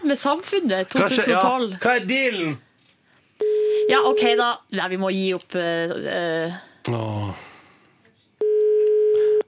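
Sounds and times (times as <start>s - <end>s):
faint noise: 0.0s - 9.4s
speech: 0.1s - 2.7s, 3.4s - 7.5s
telephone ringback tone calling a payphone: 3.4s - 4.4s, 8.4s - 9.4s.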